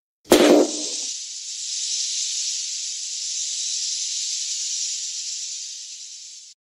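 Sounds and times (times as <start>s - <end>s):
glitter confetti cannon firing: 0.3s - 1.6s.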